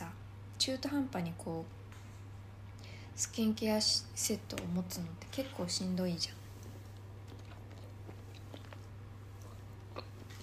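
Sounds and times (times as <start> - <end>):
speech: 0.7 - 1.8, 3.2 - 6.4
chewing a marinated soft-boiled egg: 6.4 - 10.4.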